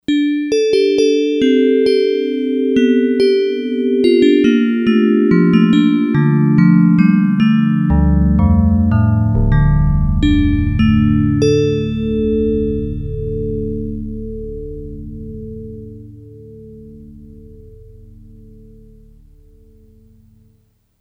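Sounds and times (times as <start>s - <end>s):
Yamaha DX100 synthesizer factory patch bell tone: 0.1s - 17.5s.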